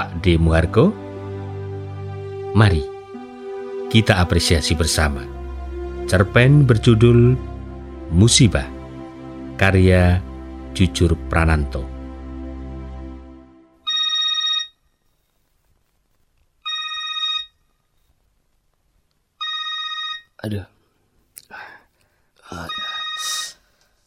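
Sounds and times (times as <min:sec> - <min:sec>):
speech: 0:00.0 - 0:01.0, 0:02.5 - 0:02.9, 0:03.9 - 0:05.4, 0:06.1 - 0:07.5, 0:08.1 - 0:08.8, 0:09.6 - 0:11.9, 0:20.4 - 0:20.7
telephone ringing with a bright electronic trill: 0:13.9 - 0:14.8, 0:16.6 - 0:17.6, 0:19.4 - 0:20.4, 0:22.7 - 0:23.5
person answering telephone: 0:19.4 - 0:20.3, 0:22.6 - 0:23.5.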